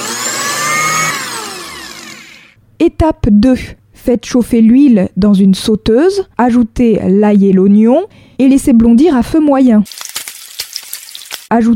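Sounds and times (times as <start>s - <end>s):
blender pureeing peeled garlic and onion: 0.0s - 2.6s
speech: 2.8s - 10.1s, 11.5s - 11.7s.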